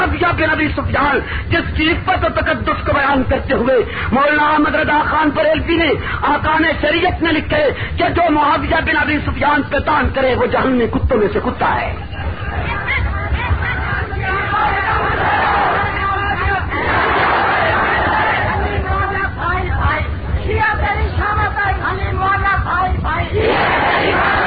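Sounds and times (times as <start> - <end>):
speech: 0.2 - 12.2
steady crowd noise at a religious rally: 11.8 - 24.4
crowd chanting slogans in unison at a religious rally: 12.2 - 19.1, 23.3 - 24.4.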